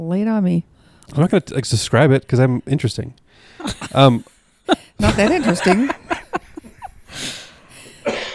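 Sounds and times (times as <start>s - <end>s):
speech: 0.0s - 4.3s, 5.0s - 6.0s
laughter: 3.6s - 7.1s
forced raspy cough: 7.8s - 8.3s.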